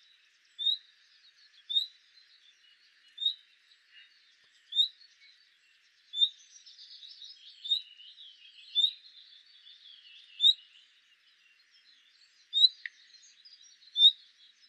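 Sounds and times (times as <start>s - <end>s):
chattering bird song: 0.0s - 14.6s
common nightingale Luscinia megarhynchos whistled call notes: 0.6s - 0.9s, 1.5s - 4.1s, 4.7s - 5.4s, 6.1s - 10.9s, 11.8s - 14.6s.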